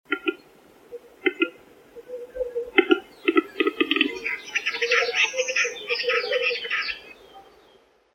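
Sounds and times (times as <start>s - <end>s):
wood grouse in a forest: 0.1s - 7.6s.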